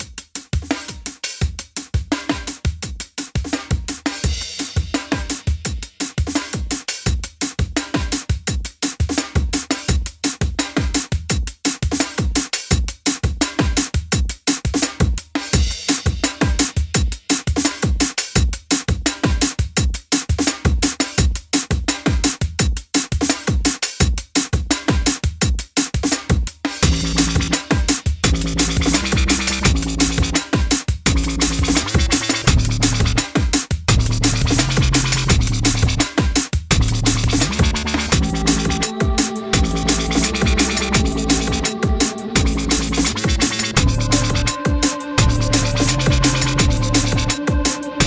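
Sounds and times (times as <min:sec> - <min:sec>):
breakbeat noise: 0:00.2 - 0:48.0
strings: 0:37.8 - 0:48.0.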